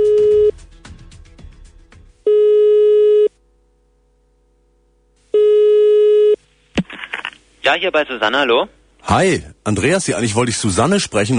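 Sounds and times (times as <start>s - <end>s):
telephone ringback tone of outgoing call: 0.0s - 0.5s, 2.3s - 3.3s, 5.4s - 6.4s
speech: 7.7s - 11.3s.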